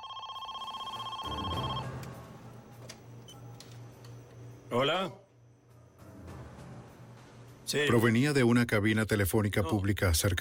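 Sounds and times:
telephone ringing with a trilling electronic tone: 0.0s - 2.3s
speech: 4.7s - 5.2s, 7.7s - 10.3s.

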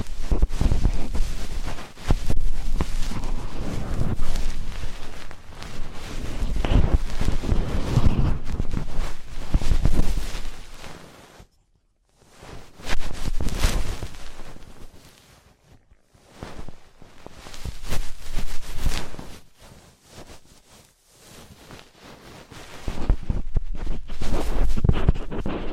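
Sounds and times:
soft thuds and handling bumps: 0.0s - 11.0s, 12.4s - 15.4s, 16.3s - 25.7s
dense scratching and rustling of ear cleaning: 0.0s - 11.5s, 12.1s - 25.7s.

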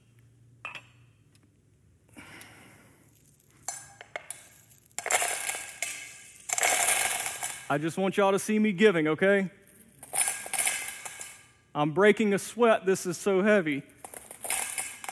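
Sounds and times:
coins slammed into a box: 3.1s - 7.8s, 9.6s - 11.5s, 13.6s - 15.0s
speech: 7.7s - 9.6s, 11.8s - 13.9s.

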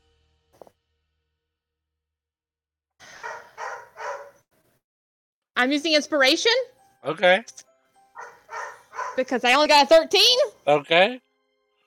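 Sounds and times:
dog barking: 3.1s - 4.4s, 8.2s - 9.3s
speech: 5.6s - 7.7s, 9.2s - 11.2s.

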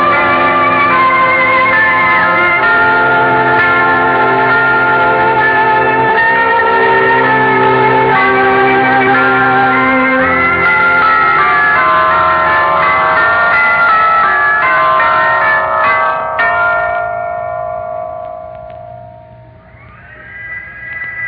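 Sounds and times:
large cathedral bells tolling: 0.0s - 21.2s.

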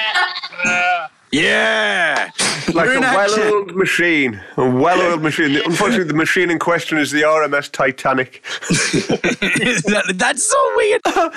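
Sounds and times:
sheep bleating: 0.0s - 1.2s, 4.9s - 6.0s
speech: 0.6s - 11.3s
laughter: 8.5s - 10.2s.

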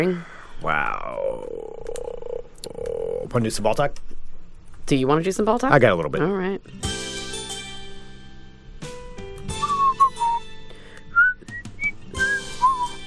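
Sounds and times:
speech: 0.0s - 1.6s, 2.6s - 4.1s, 4.9s - 7.0s
music with sustained tones: 6.1s - 13.0s
people whistling a short tune: 9.6s - 10.5s, 11.1s - 13.0s.

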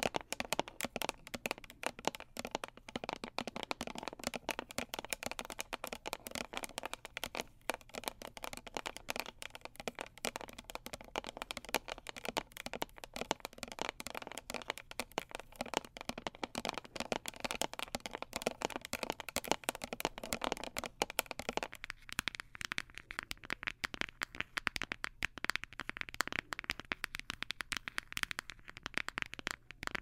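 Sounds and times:
fingertips tapping on a hard surface: 0.0s - 30.0s.

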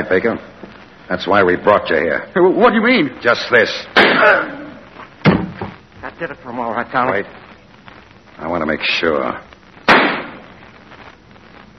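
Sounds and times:
speech: 0.0s - 4.6s, 6.2s - 7.4s, 8.4s - 9.5s
gunshot sound effect from a radio drama: 9.8s - 10.4s.

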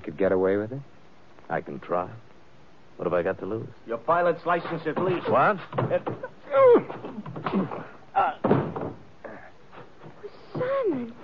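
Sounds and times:
speech: 0.1s - 2.3s, 3.0s - 8.5s
scuffling thuds of a man falling: 4.4s - 11.2s
small knocks: 4.5s - 9.2s
punch landing on a man: 4.8s - 9.1s.

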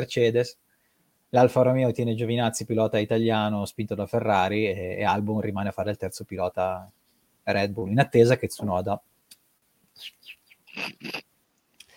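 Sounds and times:
speech: 0.0s - 0.6s, 1.3s - 9.1s, 10.0s - 11.2s
birds chirping: 10.0s - 10.9s.

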